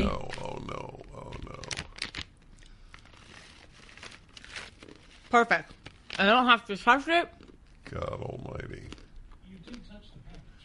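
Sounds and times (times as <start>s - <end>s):
top of a package being ripped open: 0.2s - 6.2s
speech: 5.3s - 8.5s.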